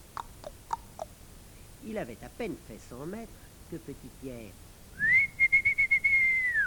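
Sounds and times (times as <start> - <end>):
speech: 1.8 - 5.3
person whistling a high note to call back a rabbit: 5.0 - 6.6.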